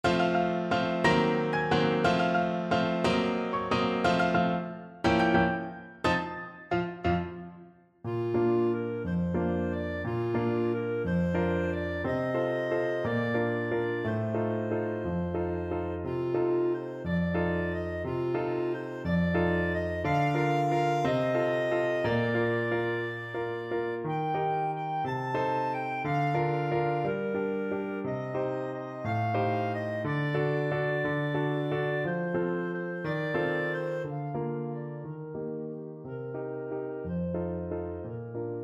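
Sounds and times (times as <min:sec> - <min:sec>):
clarinet playing a waltz: 0:00.0 - 0:38.6.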